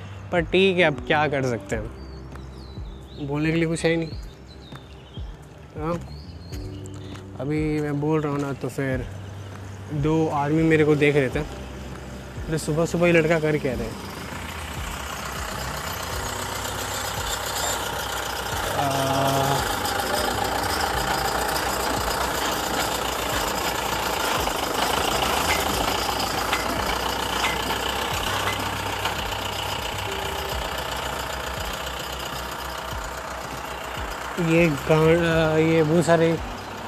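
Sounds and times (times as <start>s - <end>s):
trucks passing on a road: 0.0s - 36.8s
speech: 0.3s - 2.0s, 3.2s - 4.3s, 5.8s - 6.2s, 7.4s - 9.2s, 9.9s - 11.6s, 12.5s - 14.0s, 34.5s - 36.5s.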